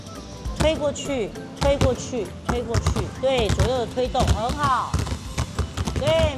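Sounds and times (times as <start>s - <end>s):
basketball dribbled between left and right hands: 0.6s - 0.9s, 1.6s - 6.3s.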